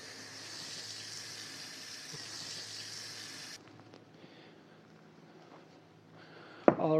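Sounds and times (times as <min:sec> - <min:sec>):
running water pouring into a container: 0:00.0 - 0:03.6
quiet hiss: 0:00.0 - 0:05.4.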